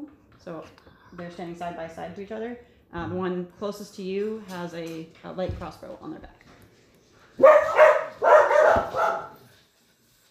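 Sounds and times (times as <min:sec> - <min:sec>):
speech: 0:00.4 - 0:06.4
dog barking: 0:07.4 - 0:09.5.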